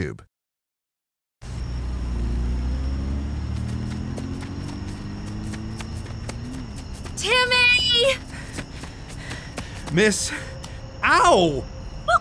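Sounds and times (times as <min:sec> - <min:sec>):
speech: 0:00.0 - 0:00.3, 0:07.2 - 0:08.3, 0:09.9 - 0:12.1
car driving off with engine rumbling: 0:01.4 - 0:10.0.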